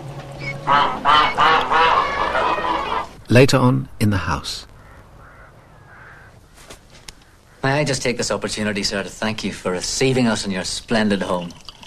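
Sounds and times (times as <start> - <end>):
gaggle of white geese honking beside a bath in a stable: 0.4 - 3.2, 4.8 - 6.6
speech: 0.7 - 1.2, 3.3 - 4.7, 7.6 - 11.6.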